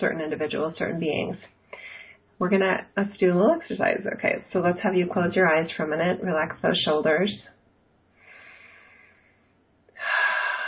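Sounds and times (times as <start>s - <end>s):
speech: 0.0s - 1.8s, 2.4s - 7.6s
person taking a deep breath during a relaxation exercise: 8.2s - 10.6s.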